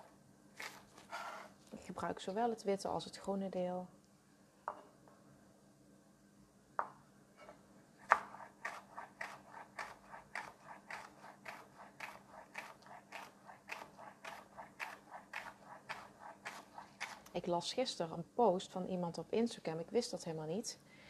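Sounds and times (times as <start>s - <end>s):
speech: 1.9s - 4.0s, 17.5s - 20.9s
knife chopping spring onions into small rings on a cutting board: 8.0s - 17.3s.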